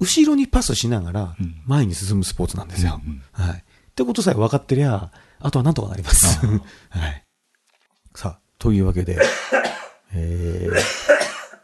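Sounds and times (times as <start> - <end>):
speech: 0.0 - 7.2, 8.2 - 11.0
person coughing: 9.2 - 10.0, 10.6 - 11.6.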